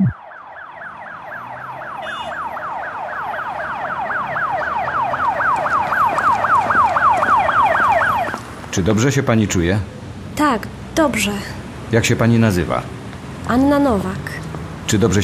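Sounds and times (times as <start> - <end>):
ambulance siren wailing: 0.0 - 8.6
low rumble of traffic: 0.0 - 15.2
speech: 8.8 - 15.2.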